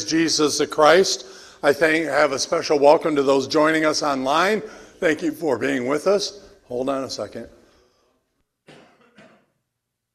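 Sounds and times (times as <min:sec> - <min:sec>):
speech: 0:00.1 - 0:07.6
coughs during a church worship service: 0:08.6 - 0:09.6.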